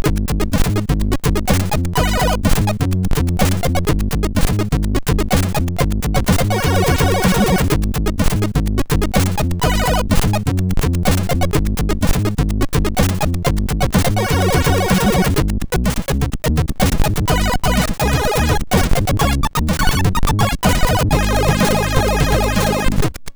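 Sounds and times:
funky MOS6581R4 chip music: 0.0 - 23.2.

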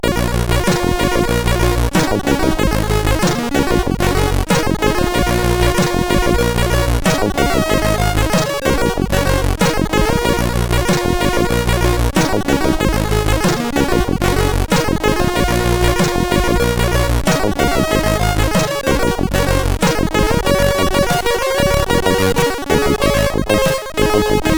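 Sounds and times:
game music on a SID CSG8580R5 sound chip: 0.0 - 24.5.

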